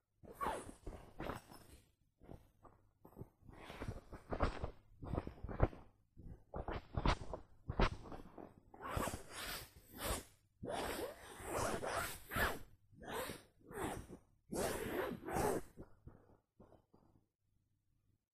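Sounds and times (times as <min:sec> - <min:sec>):
nylon rubbing: 0:03.1 - 0:05.8, 0:06.6 - 0:15.9.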